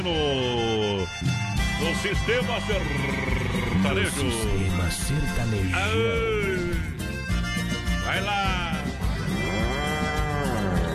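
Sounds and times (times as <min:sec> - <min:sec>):
speech: 0:00.0 - 0:07.0, 0:08.1 - 0:08.8
ox mooing: 0:02.8 - 0:04.8, 0:09.2 - 0:10.9.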